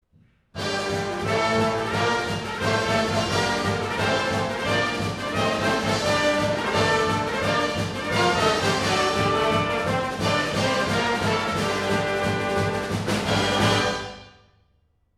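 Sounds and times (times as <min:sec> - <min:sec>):
fanfare thunder: 0:00.6 - 0:14.4.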